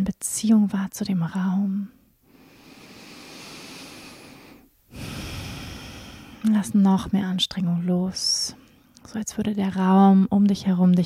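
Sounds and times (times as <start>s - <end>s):
speech: 0.0s - 2.0s, 6.4s - 11.0s
long airy breath in during a guided relaxation exercise: 2.2s - 6.4s.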